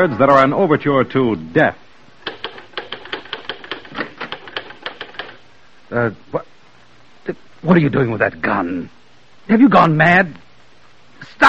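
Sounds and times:
speech: 0.0 - 1.8, 5.9 - 6.5, 7.2 - 10.4, 11.2 - 11.4
typewriter keys clacking in a study: 2.2 - 5.4.

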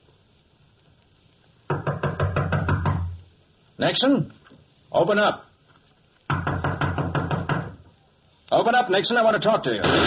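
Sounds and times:
firm knocking on a door: 1.7 - 3.2, 6.3 - 7.8
speech: 3.8 - 5.5, 8.5 - 10.0.

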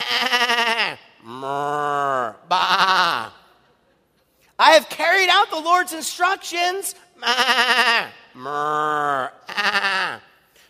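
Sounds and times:
sheep bleating: 0.0 - 3.5, 7.2 - 10.4
speech: 5.8 - 9.8.

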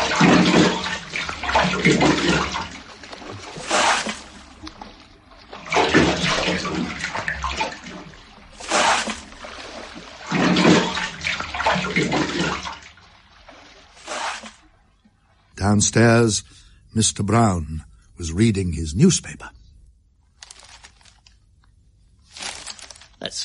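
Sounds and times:
water being bailed out with a hat: 0.0 - 15.5
speech: 1.8 - 2.5, 15.8 - 19.6.

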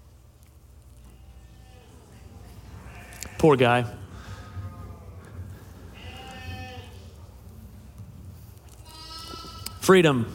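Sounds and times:
sheep bleating: 1.0 - 2.1, 2.8 - 3.6, 5.9 - 7.1, 8.8 - 9.8
murmur of voices: 1.0 - 10.0
speech: 3.4 - 4.0, 9.9 - 10.3.

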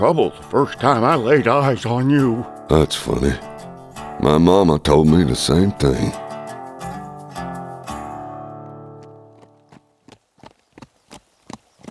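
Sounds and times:
speech: 0.0 - 3.5, 4.2 - 6.2
horse hooves clip-clopping on an old horse trail: 9.0 - 11.8.

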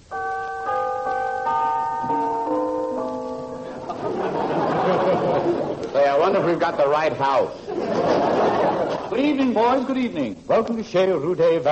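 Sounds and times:
doorbell chime: 0.0 - 4.8
laughter: 3.6 - 9.4
speech: 6.3 - 8.3, 9.1 - 11.7.

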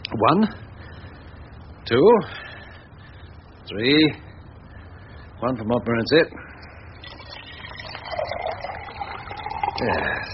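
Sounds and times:
speech: 0.2 - 0.7, 1.9 - 2.5, 3.7 - 4.3, 5.4 - 6.5, 9.8 - 10.3
water poured out of a teapot into a vessel: 7.0 - 10.3.

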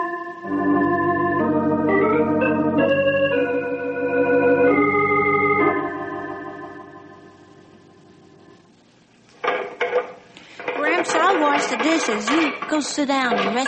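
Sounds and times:
low steady hum: 0.4 - 13.6
dishes clinking and clattering in a sink while being washed: 9.4 - 13.6
sharp knocks: 9.4 - 13.6
voices talking: 10.6 - 13.6.

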